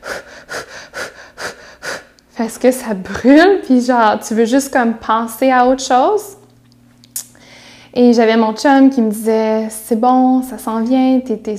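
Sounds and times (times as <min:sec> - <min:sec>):
person imitating rapid breathing used while pushing during childbirth: 0:00.0 - 0:02.2, 0:07.4 - 0:08.0
speech: 0:02.4 - 0:06.4, 0:08.0 - 0:11.5.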